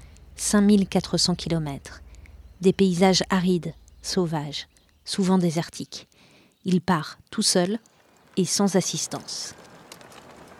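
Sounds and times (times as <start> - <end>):
speech: 0.4 - 2.0, 2.6 - 9.7
40 kg trailer wheels rattling behind a runner crossing Australia: 7.8 - 10.5.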